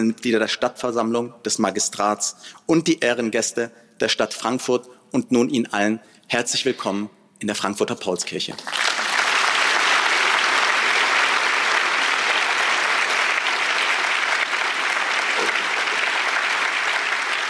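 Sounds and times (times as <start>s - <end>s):
speech: 0.0s - 8.8s
large audience applauding in the Paulskirche in Frankfurt, Germany: 8.6s - 17.4s.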